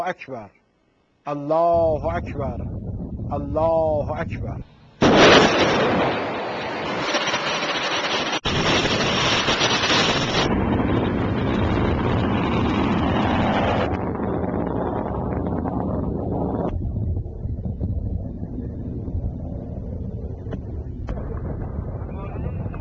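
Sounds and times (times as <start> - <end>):
speech: 0.0 - 0.6, 1.2 - 6.2
roar from the launch of an optimized Sejjil-2 missile: 5.0 - 22.7.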